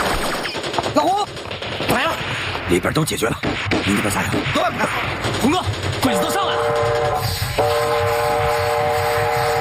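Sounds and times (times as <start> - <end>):
approaching train rumbling: 0.6 - 9.5
speech: 2.7 - 7.7
loud sustained train horn blast: 6.4 - 9.5.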